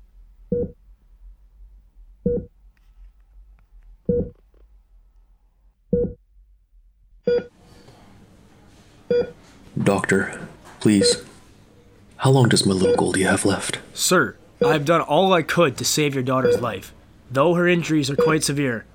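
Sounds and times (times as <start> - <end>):
quiet low hum: 0.0 - 7.5
speech: 0.5 - 0.8, 9.9 - 11.3, 12.2 - 18.9
steady single-tone electronic beep: 0.5 - 0.8, 2.3 - 2.5, 4.1 - 4.4, 14.6 - 14.8, 18.1 - 18.5.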